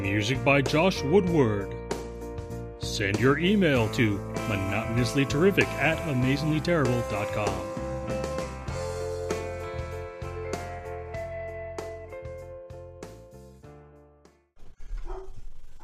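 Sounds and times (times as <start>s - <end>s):
speech: 0.0s - 1.8s, 2.8s - 7.8s
music: 0.0s - 14.5s
several pet dogs barking excitedly with quick yaps: 14.9s - 15.8s.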